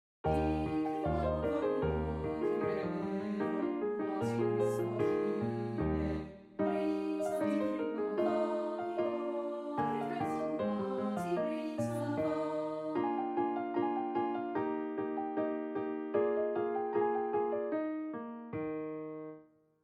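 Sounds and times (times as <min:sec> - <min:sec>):
piano accompanying an allegretto art song: 0:00.2 - 0:19.8
person singing an allegretto art song: 0:00.3 - 0:13.4.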